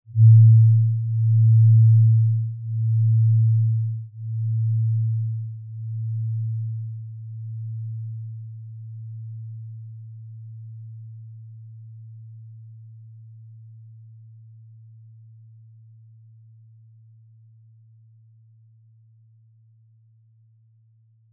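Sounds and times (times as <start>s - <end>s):
singing bowl: 0.1s - 16.8s.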